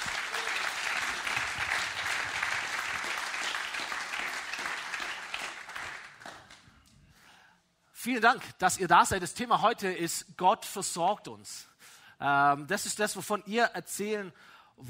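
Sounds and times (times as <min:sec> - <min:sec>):
audience at a church service applauding: 0:00.0 - 0:06.6
speech: 0:08.0 - 0:14.8.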